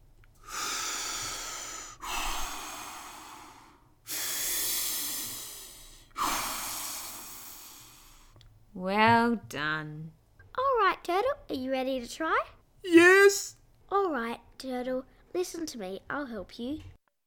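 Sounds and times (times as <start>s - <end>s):
deep breaths: 0.4s - 8.4s
speech: 8.8s - 10.2s, 11.0s - 16.9s.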